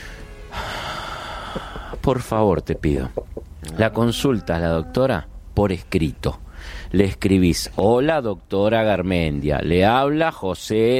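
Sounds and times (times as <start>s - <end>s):
deep breath in: 0.0s - 2.0s
speech: 1.5s - 10.9s.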